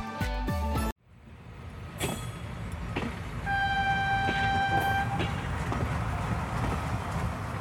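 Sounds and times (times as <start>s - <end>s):
local train rumbling in: 1.1s - 7.5s
sustained two-tone local train horn: 3.4s - 5.6s.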